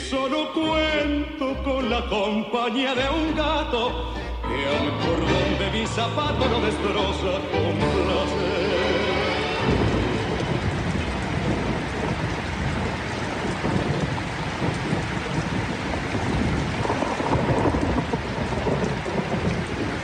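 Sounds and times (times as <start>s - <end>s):
speech: 0.1s - 8.6s
heavy rain pouring through a thunderstorm: 4.0s - 20.0s
deep rumbling thunder: 8.0s - 20.0s.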